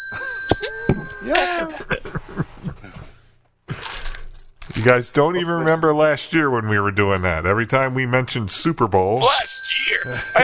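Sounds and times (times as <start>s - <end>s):
bright bell ringing: 0.0s - 1.7s, 9.3s - 10.4s
speech: 0.5s - 2.0s, 4.8s - 10.4s
people laughing: 0.6s - 3.1s, 10.1s - 10.4s.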